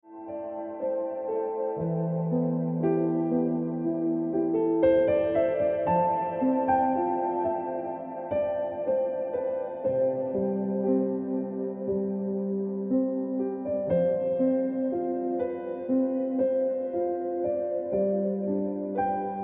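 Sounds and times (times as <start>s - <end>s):
piano ringtone music: 0.1s - 19.4s.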